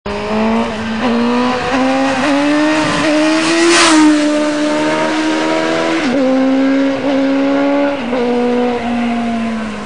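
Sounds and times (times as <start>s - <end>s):
750 YZF motorcycle engine: 0.1s - 9.8s.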